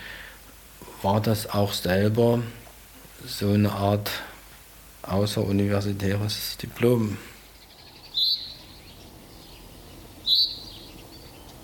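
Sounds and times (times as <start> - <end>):
steady soft hiss: 0.0 - 11.6
speech: 1.0 - 2.6, 3.2 - 4.3, 5.0 - 7.3
bird chirping outdoors in a spring garden in Dresden: 6.8 - 11.6.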